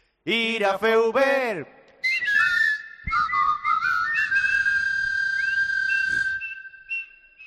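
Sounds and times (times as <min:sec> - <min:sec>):
speech: 0:00.2 - 0:01.8
stadium crowd whistling: 0:02.1 - 0:07.4.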